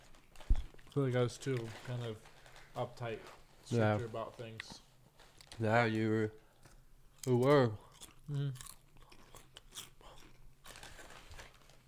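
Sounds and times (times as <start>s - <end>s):
speech: 1.0s - 4.8s, 5.6s - 6.4s, 7.2s - 8.7s
wet crunchy chewing with the mouth open: 7.2s - 11.0s.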